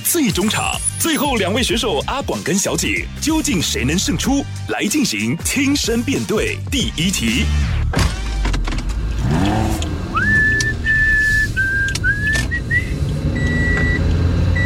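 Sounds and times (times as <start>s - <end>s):
speech: 0.1s - 8.1s
car engine rumble: 7.7s - 14.6s
clicks and thumps from inside the vehicle: 7.9s - 14.2s
person whistling a radio station jingle: 10.1s - 13.0s.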